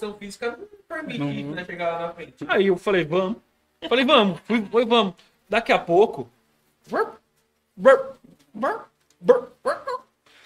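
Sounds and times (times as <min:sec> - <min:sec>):
speech: 0:00.0 - 0:07.2, 0:07.8 - 0:10.0
person voicing sharp rising barks imitating several dogs: 0:07.8 - 0:10.1.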